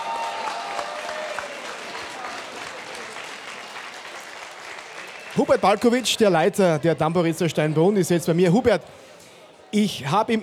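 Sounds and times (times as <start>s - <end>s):
audience applauding a soloist at a folk concert: 0.0s - 7.2s
speech: 5.4s - 9.0s, 9.7s - 10.4s.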